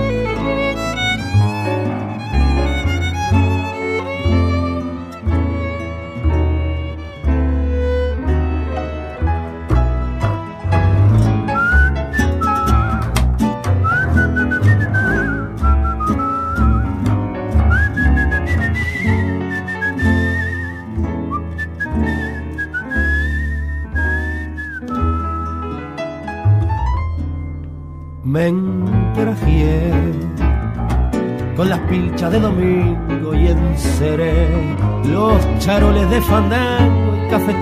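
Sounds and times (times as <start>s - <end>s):
instrumental accompaniment with steady bass and rhythmic chords: 0.0s - 37.6s
person whistling a flowing wavering melody: 11.4s - 26.0s.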